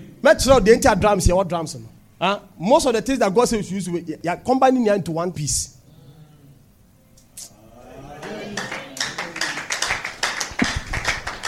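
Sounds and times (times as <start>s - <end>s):
speech: 0.3s - 5.8s
murmuring voices: 7.4s - 9.5s
steady rhythmic hand clapping: 8.2s - 11.4s.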